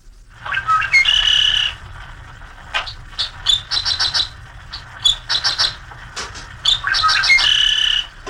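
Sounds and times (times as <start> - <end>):
low constant rumble: 0.0 - 8.2
dickcissel singing on a hot Midwest summer day: 0.4 - 8.2.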